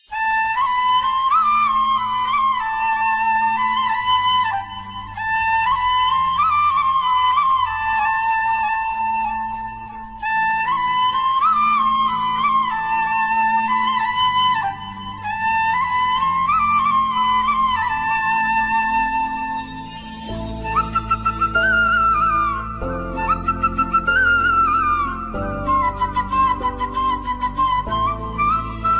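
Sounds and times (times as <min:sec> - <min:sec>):
flute ringtone: 0:00.0 - 0:28.9.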